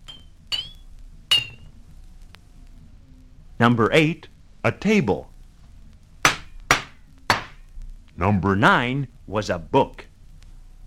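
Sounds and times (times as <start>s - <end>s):
tapping an empty glass bottle: 0.0s - 1.6s
speech: 3.6s - 5.3s, 8.2s - 10.1s.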